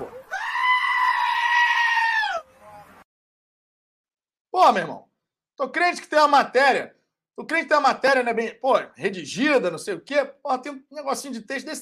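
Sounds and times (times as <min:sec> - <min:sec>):
goat bleating: 0:00.3 - 0:02.5
speech: 0:04.6 - 0:11.8.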